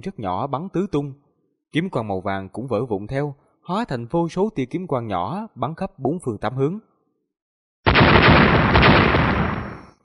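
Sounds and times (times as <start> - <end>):
speech: 0.0 - 6.9
explosion sound effect in an audiobook: 7.9 - 10.0.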